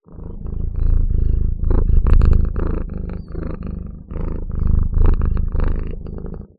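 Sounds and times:
cat purring: 0.0s - 6.5s.

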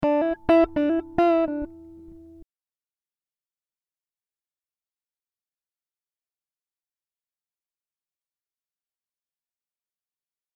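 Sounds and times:
guitar riffs: 0.0s - 2.4s.

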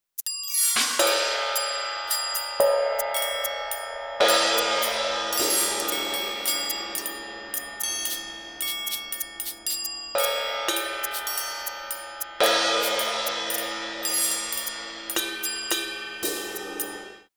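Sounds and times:
percussion set: 0.0s - 17.3s.

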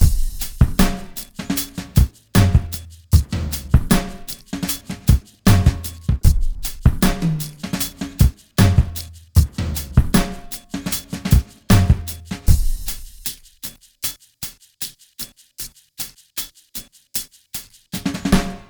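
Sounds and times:
drum loop: 0.0s - 13.7s, 18.0s - 18.6s.

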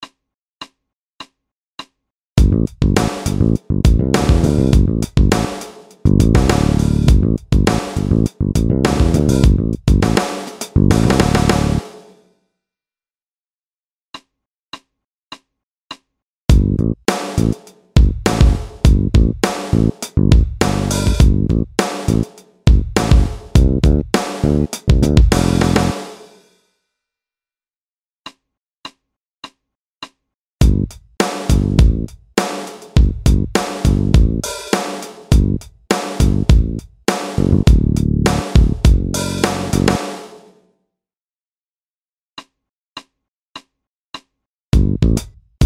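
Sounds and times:
bass loop: 2.4s - 10.2s, 10.8s - 11.8s, 16.5s - 26.0s, 30.6s - 32.1s, 33.0s - 34.5s, 35.3s - 35.6s, 36.2s - 36.8s, 37.4s - 40.0s, 44.8s - 45.6s
drum loop: 2.4s - 12.0s, 16.5s - 26.2s, 30.6s - 40.4s, 44.8s - 45.6s.

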